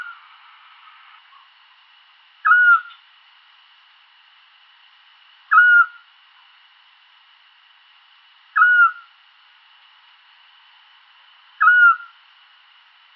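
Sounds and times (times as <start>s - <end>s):
Eurasian scops owl calling a whistled toot: 2.4s - 3.0s, 5.5s - 6.0s, 8.6s - 9.1s, 11.6s - 12.2s.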